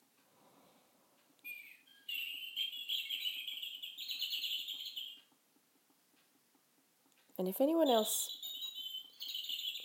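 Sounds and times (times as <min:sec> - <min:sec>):
bird clock playing recorded birdsong as hourly chime: 0:01.4 - 0:05.5, 0:07.4 - 0:09.8
speech: 0:07.4 - 0:08.4.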